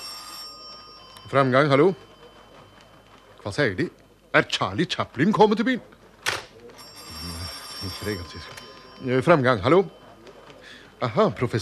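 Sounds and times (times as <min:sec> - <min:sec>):
telephone bell ringing: 0:00.0 - 0:04.3, 0:06.7 - 0:11.6
faint murmuring voices: 0:00.0 - 0:11.6
speech: 0:01.3 - 0:02.1, 0:03.4 - 0:05.9, 0:07.8 - 0:10.0, 0:11.0 - 0:11.6.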